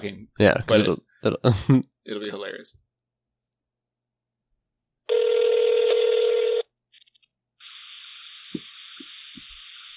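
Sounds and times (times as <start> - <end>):
speech: 0.0 - 2.8
phone ringing tone on speakerphone: 5.1 - 6.7
hissing open phone connection: 7.2 - 9.9.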